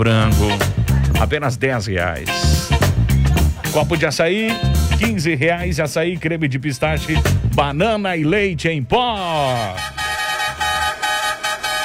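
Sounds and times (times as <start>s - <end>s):
speech: 0.0s - 0.6s, 1.2s - 2.8s, 3.7s - 10.0s
car horn honking: 9.5s - 11.8s.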